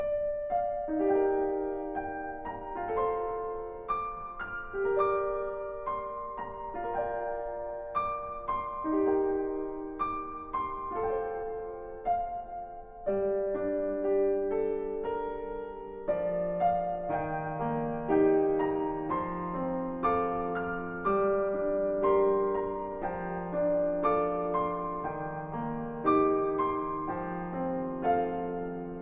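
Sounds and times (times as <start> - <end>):
piano theme: 0.0 - 29.0.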